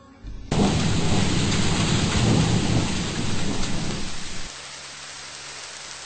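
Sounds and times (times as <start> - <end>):
low thunder-like rumbling: 0.3 - 4.5
sudden heavy rain shower: 0.4 - 6.0.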